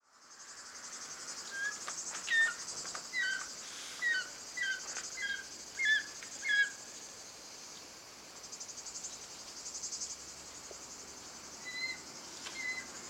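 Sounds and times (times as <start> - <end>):
Circaetus gallicus short-toed snake eagle: 1.6 - 6.8, 11.6 - 12.9.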